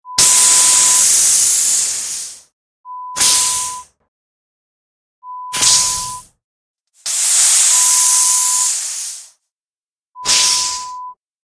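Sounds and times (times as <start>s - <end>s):
compressed air hissing: 0.2s - 2.5s, 3.2s - 3.8s, 5.6s - 6.2s, 7.0s - 9.4s, 10.2s - 11.0s.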